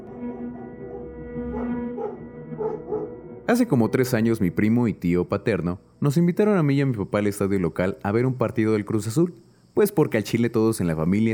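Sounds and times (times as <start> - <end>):
dog with short yelping barks: 0.0 - 3.2
speech: 3.5 - 11.3.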